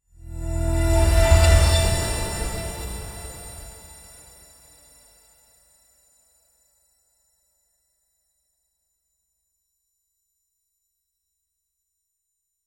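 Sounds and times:
short elegant golden shimmer chime: 0.3 - 5.0.

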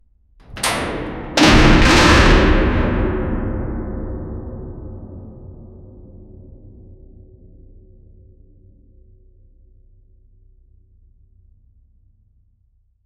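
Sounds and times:
huge iron door of a building closing: 0.4 - 3.8.

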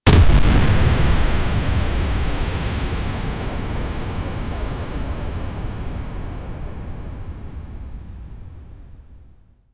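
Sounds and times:
nuclear blast: 0.0 - 8.7.

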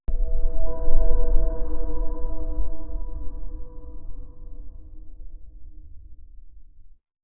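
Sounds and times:
low rumble: 0.1 - 7.0.

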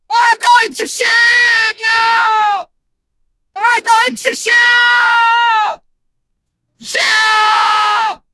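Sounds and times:
rapper screaming: 0.1 - 2.7, 3.6 - 5.8, 6.8 - 8.2.

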